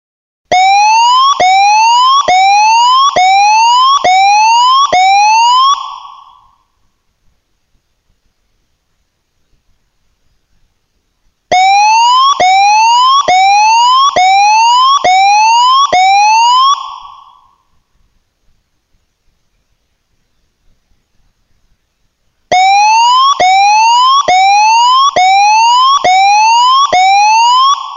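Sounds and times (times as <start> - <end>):
tsunami warning siren whoops: 0.5 - 6.3, 11.5 - 17.3, 22.5 - 27.9.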